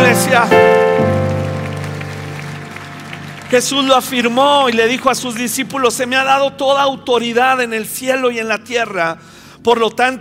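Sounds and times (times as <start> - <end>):
sustained keyboard chords: 0.0 - 5.2
church audience clapping: 0.0 - 6.3
speech: 0.1 - 1.1, 3.5 - 10.1.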